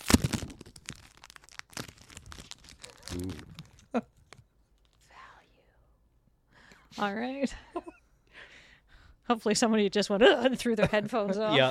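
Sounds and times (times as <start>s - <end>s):
foil booster pack of trading cards being torn open: 0.0s - 3.9s
speech: 3.1s - 4.1s, 7.0s - 8.0s, 9.3s - 11.6s.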